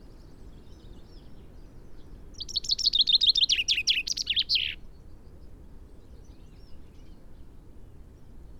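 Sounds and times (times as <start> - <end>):
common chaffinch Fringilla coelebs song: 2.4 - 4.8.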